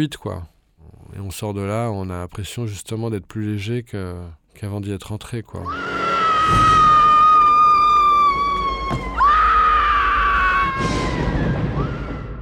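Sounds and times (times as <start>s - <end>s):
speech: 0.0s - 0.5s, 1.2s - 5.9s, 6.5s - 6.9s
woman screaming in terror: 5.7s - 12.3s.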